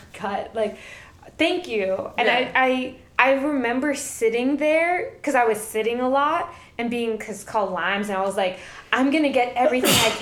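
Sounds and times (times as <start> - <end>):
speech: 0.2 - 10.2
person sneezing: 9.7 - 10.2.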